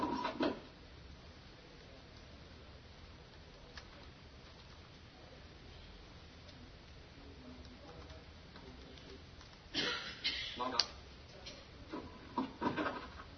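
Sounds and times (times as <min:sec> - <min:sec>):
quiet hum: 0:00.0 - 0:13.3
Windows computer keyboard keys clicking: 0:03.3 - 0:05.0, 0:07.6 - 0:09.7.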